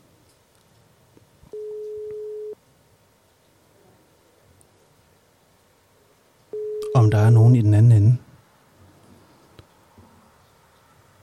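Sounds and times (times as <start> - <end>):
telephone ringing tone while placing a call to a coastal rescue service in Skagen Denmark: 1.5 - 2.6, 6.6 - 7.4
speech: 7.0 - 8.2.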